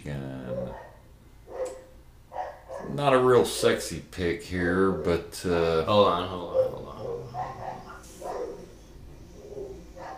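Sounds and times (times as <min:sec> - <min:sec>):
steady hum: 0:00.0 - 0:10.1
several dogs barking: 0:00.4 - 0:03.1, 0:06.3 - 0:10.1
speech: 0:03.0 - 0:07.0.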